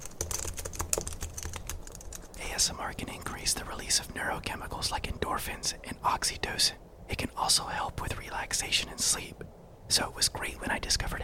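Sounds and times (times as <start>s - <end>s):
typing on a computer keyboard: 0.0s - 2.4s
speech: 2.6s - 11.2s.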